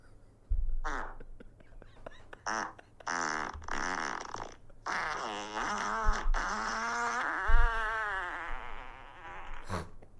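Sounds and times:
recorded wet sputtering farts played back loudly: 0:00.8 - 0:01.3, 0:02.4 - 0:10.0.

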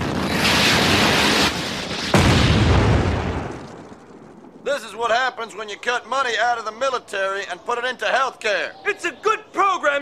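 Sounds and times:
Sidewinder missile launch roar at an Iraqi aircraft: 0:00.0 - 0:03.9
speech: 0:04.8 - 0:10.0.

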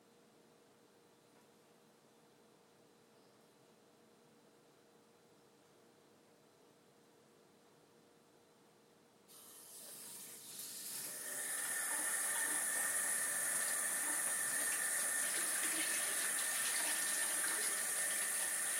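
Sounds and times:
water gushing fast from a sink tap with a broken filter: 0:09.3 - 0:18.7.

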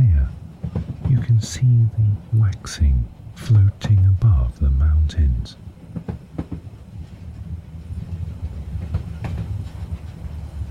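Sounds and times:
train rumbling along rails: 0:00.0 - 0:10.6
train wheels clacking over track joints: 0:00.6 - 0:01.6, 0:05.8 - 0:10.6
speech: 0:01.4 - 0:05.6.

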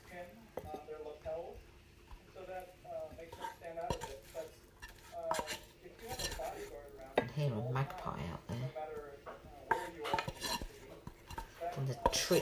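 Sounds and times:
soft stirring: 0:00.0 - 0:12.4
spoon clinking and scraping against dishes while spooning food onto a plate: 0:03.2 - 0:07.4, 0:09.3 - 0:12.4
speech: 0:12.3 - 0:12.4.

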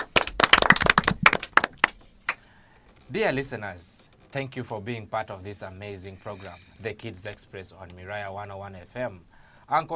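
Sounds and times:
small group applauding a performer: 0:00.0 - 0:02.5
speech: 0:03.1 - 0:09.9.

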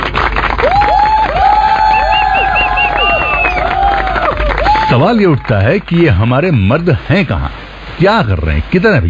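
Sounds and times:
loud crowd cheering and clapping: 0:00.0 - 0:06.2
crowd whistles and whoops: 0:00.6 - 0:05.0
speech: 0:05.0 - 0:09.0.

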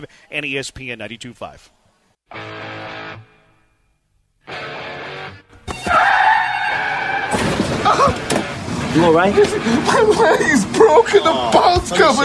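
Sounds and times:
speech: 0:00.0 - 0:02.8, 0:09.0 - 0:12.2
car crash impact: 0:05.6 - 0:09.6
car tires skidding: 0:05.8 - 0:10.8
debris rattling: 0:07.0 - 0:09.6
laughter: 0:09.2 - 0:11.8.

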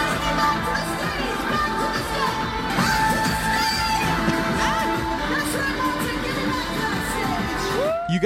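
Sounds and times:
large concert crowd roaring and yelling: 0:00.0 - 0:08.2
shouts, whoops and screams from concert crowd: 0:07.6 - 0:08.2.

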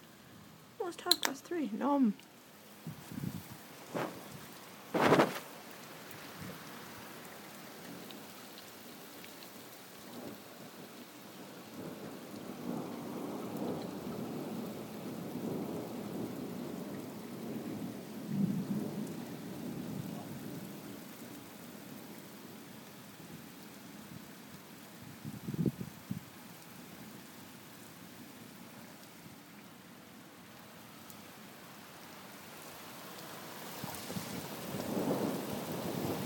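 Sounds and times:
steady rain: 0:00.0 - 0:36.2
speech: 0:00.9 - 0:02.3
rolling rumble of thunder: 0:11.7 - 0:21.0, 0:33.9 - 0:36.2.

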